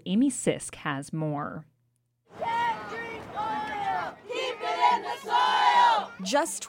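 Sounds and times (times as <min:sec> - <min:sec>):
speech: 0:00.0 - 0:01.7, 0:06.2 - 0:06.6
large crowd shouting and chanting at a protest rally: 0:02.3 - 0:06.6.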